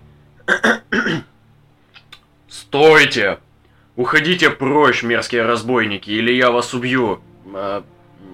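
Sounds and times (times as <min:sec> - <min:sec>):
gruff throat-clearing cough: 0:00.4 - 0:01.3
speech: 0:00.6 - 0:01.3, 0:02.7 - 0:03.4, 0:04.0 - 0:08.0
faint small clicks: 0:01.9 - 0:02.3.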